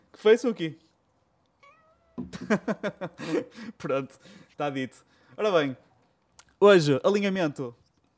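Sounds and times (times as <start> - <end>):
speech: 0.2 - 0.8, 2.2 - 5.9, 6.6 - 7.8
female cat meowing: 1.6 - 2.3
laughter: 2.3 - 3.9.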